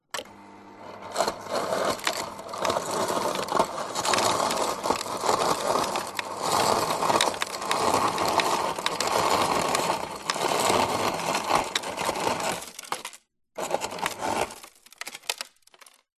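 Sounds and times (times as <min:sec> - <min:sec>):
household refrigerator ice dispenser serving crushed ice into glass: 0:01.1 - 0:16.1.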